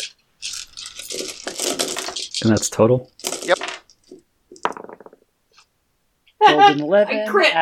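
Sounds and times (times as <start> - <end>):
dice rolling on a hard tabletop: 0.0 - 5.7
speech: 2.4 - 3.7, 6.7 - 7.6.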